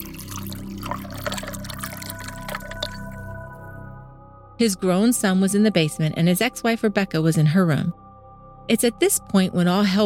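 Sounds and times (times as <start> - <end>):
ice water pouring into a glass in a home kitchen: 0.0 - 3.8
speech: 4.6 - 8.0, 8.7 - 10.0.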